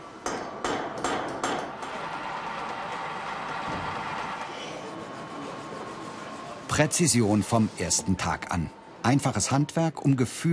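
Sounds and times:
sharp hammer-like metallic strikes in a metalworking training workshop: 0.2 - 2.0
steady mechanical whir of metalworking machinery: 1.7 - 10.5
speech: 6.8 - 10.5.

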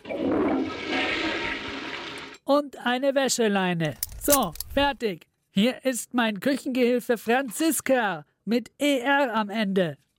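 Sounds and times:
toilet flushing: 0.0 - 2.4
speech: 2.5 - 10.0.

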